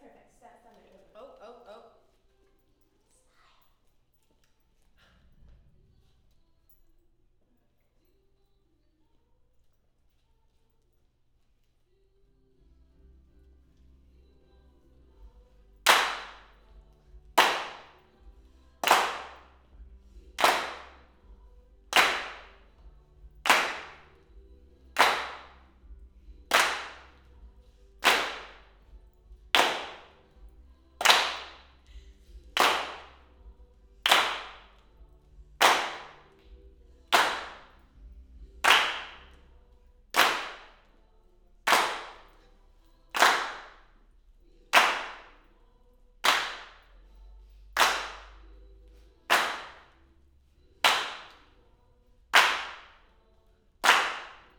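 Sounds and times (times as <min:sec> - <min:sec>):
mid claps: 0:15.8 - 0:16.6, 0:17.3 - 0:19.6, 0:20.4 - 0:21.1, 0:21.9 - 0:24.4, 0:25.0 - 0:25.6, 0:26.5 - 0:27.4, 0:28.0 - 0:33.4, 0:34.0 - 0:35.0, 0:35.6 - 0:37.8, 0:38.6 - 0:39.4, 0:40.2 - 0:40.8, 0:41.7 - 0:42.4, 0:43.2 - 0:43.8, 0:44.7 - 0:45.4, 0:46.2 - 0:46.9, 0:47.8 - 0:50.0, 0:50.8 - 0:51.5, 0:52.3 - 0:53.0, 0:53.8 - 0:54.5.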